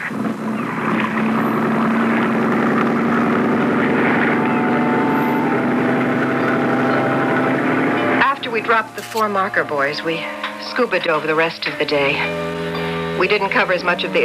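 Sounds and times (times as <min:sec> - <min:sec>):
boat engine at sea droning: 0:00.0 - 0:14.2
speech: 0:08.7 - 0:12.4, 0:13.2 - 0:14.2.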